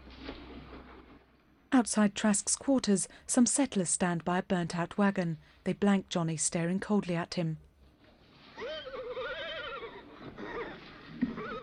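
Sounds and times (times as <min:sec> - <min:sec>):
speech: 0:01.8 - 0:07.7
horse braying with a long quavering whinny: 0:08.5 - 0:11.6.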